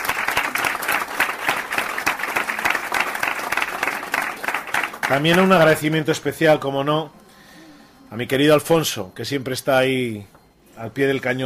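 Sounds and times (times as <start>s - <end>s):
audience applauding a choir singer: 0.0s - 6.0s
speech: 5.1s - 7.2s, 8.1s - 11.4s.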